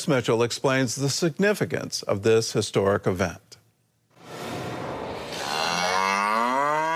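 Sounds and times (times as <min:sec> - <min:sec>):
speech: 0:00.0 - 0:03.5
kosher red heifer mooing in Shiloh, Israel: 0:05.3 - 0:06.9.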